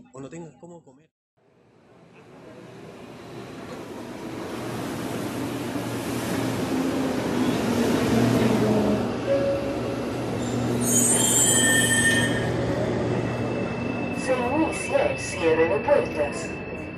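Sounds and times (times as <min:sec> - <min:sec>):
subway train rumbling through a station: 0:01.4 - 0:16.9
subway train wheels squealing: 0:10.4 - 0:16.9.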